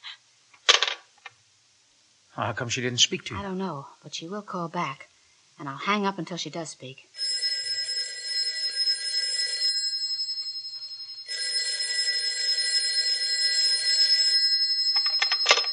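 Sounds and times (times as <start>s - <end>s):
speech: 2.4s - 7.3s
telephone bell ringing with a high metallic jangle: 7.2s - 15.7s.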